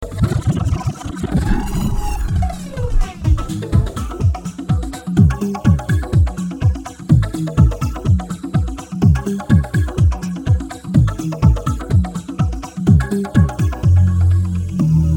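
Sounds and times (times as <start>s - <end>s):
percussive beat: 0.1s - 15.0s
melodious synth sound: 1.4s - 4.4s.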